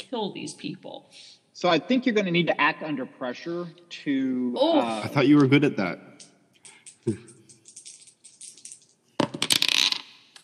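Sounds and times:
speech: 0.0 - 6.2, 7.0 - 7.3
laughter: 1.6 - 6.0
dice rolled onto a hard surface rattling: 7.5 - 10.1.

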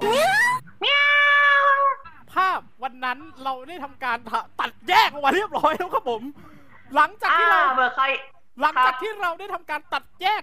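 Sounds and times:
cat meowing: 0.0 - 2.1
speech: 3.1 - 10.4.

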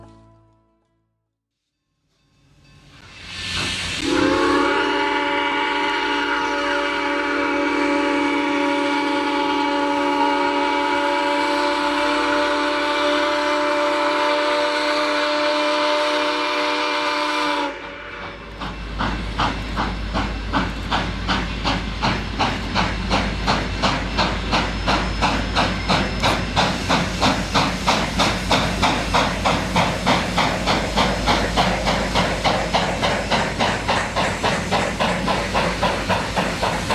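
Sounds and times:
rhythmic steam train chuffing: 2.3 - 36.9
loud hissing steam: 2.8 - 36.9
steam train whistle blowing as the train departs: 3.9 - 18.6.

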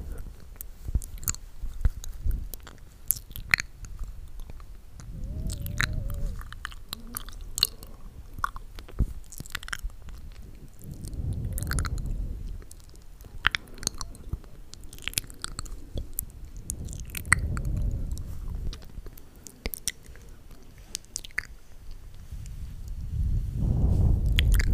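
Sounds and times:
soft low breaths: 0.0 - 24.7
wet mouth clicks and smacks: 4.3 - 22.1, 24.3 - 24.7
kisses: 5.0 - 7.8.

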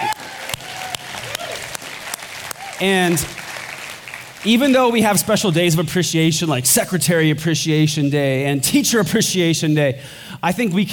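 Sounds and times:
audience applause: 0.0 - 5.1
speech: 2.8 - 3.4, 4.4 - 10.9.

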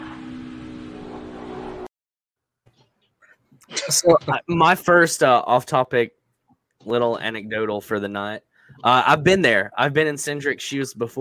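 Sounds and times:
race car engine roaring onboard at speed: 0.0 - 1.9
speech: 3.6 - 6.2, 6.8 - 11.2.

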